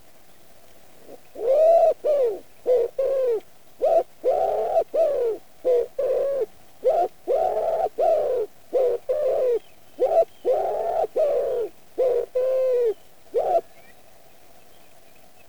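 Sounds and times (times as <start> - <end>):
wood pigeon Columba palumbus: 1.0 - 13.8.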